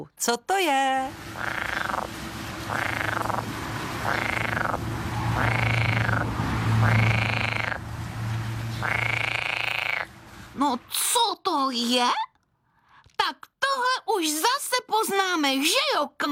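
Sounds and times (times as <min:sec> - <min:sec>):
speech: 0:00.0 - 0:04.8, 0:11.6 - 0:12.3, 0:13.3 - 0:16.3
frog croaking: 0:01.1 - 0:07.9, 0:08.6 - 0:10.1.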